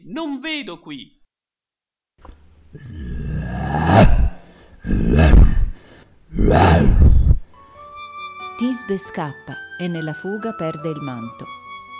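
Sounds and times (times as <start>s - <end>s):
speech: 0.1s - 1.2s, 8.6s - 11.6s
male actor imitating a lion's roar: 2.8s - 7.4s.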